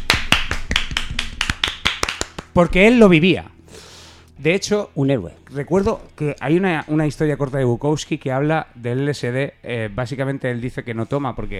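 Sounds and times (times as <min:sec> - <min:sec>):
hand clapping: 0:00.0 - 0:02.8
speech: 0:02.6 - 0:03.5, 0:04.4 - 0:11.5.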